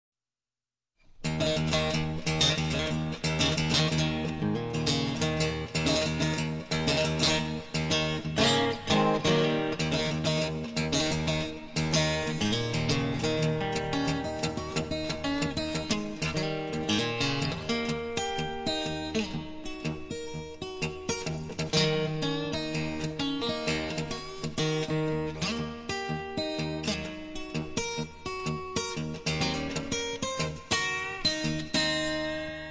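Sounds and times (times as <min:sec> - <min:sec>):
guitar: 0:01.1 - 0:32.6.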